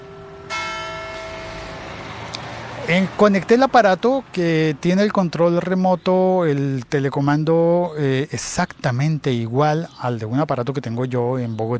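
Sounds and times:
church bells ringing at six in the evening: 0.0s - 3.4s
speech: 2.9s - 11.7s.

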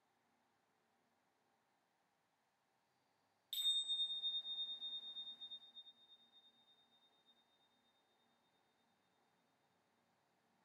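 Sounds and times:
bright meditation bell ringing: 3.6s - 8.8s.

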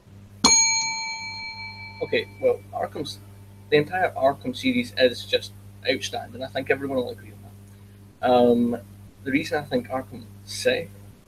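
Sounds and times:
bright metallic bell ding: 0.4s - 2.6s
speech: 2.0s - 7.3s, 8.2s - 11.2s.

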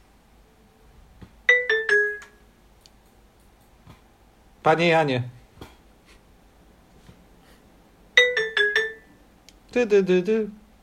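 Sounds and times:
ringtone melody of four quick bright electronic notes: 1.5s - 2.4s, 8.2s - 9.2s
speech: 4.6s - 5.4s, 9.7s - 10.6s.

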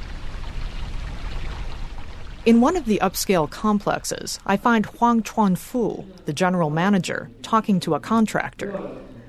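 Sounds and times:
river water flowing: 0.0s - 4.0s
speech: 2.5s - 9.1s.

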